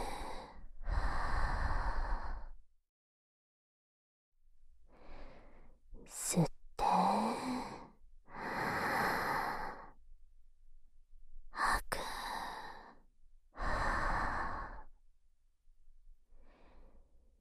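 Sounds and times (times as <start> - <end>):
deep breathing in and out during a guided breathing exercise: 0.0 - 2.6, 4.8 - 5.8, 7.0 - 10.0, 11.6 - 15.0, 16.3 - 17.3.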